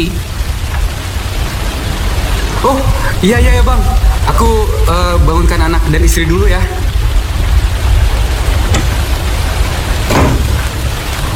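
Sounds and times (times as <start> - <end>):
heavy rain: 0.0 - 11.3
speech: 2.6 - 6.8
sharp splashes or knocks: 8.4 - 11.3.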